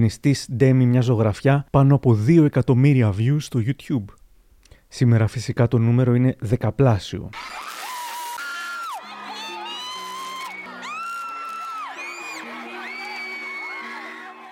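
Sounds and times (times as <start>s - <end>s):
speech: 0.0s - 4.2s, 4.9s - 7.8s
large crowd of fans screaming and cheering: 7.3s - 14.4s.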